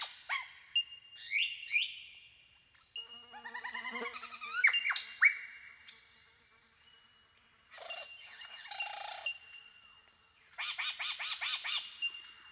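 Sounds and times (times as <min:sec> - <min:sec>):
Superb lyrebird song: 0:00.0 - 0:12.4.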